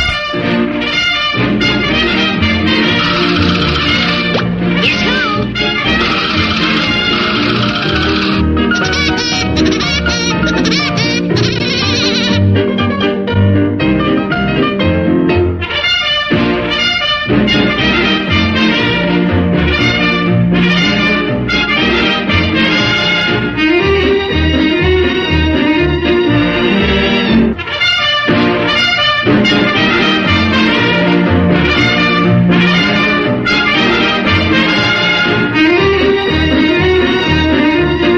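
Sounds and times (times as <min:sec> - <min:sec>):
bouncy musical backing: 0:00.0 - 0:38.1
cartoon woodpecker laugh ringtone: 0:02.8 - 0:04.3, 0:04.9 - 0:12.4.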